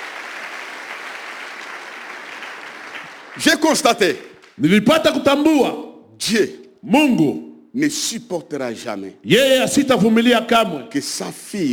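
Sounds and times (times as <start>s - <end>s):
church congregation clapping: 0.0s - 4.6s
speech: 3.4s - 11.7s.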